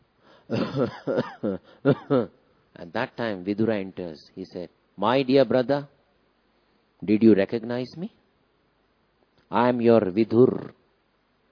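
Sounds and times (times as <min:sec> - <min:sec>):
person imitating the coughing of an old blind man: 0:00.5 - 0:02.4
speech: 0:00.5 - 0:06.0, 0:07.0 - 0:08.2, 0:09.5 - 0:10.8.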